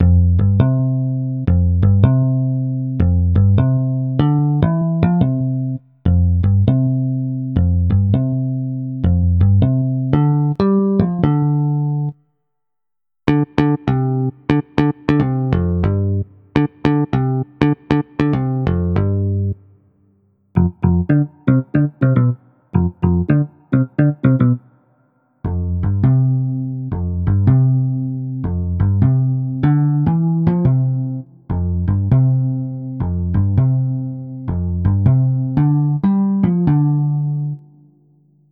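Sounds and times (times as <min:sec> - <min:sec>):
solo electric bass: 0:00.0 - 0:12.2, 0:13.3 - 0:19.6, 0:20.6 - 0:24.8, 0:25.4 - 0:38.5.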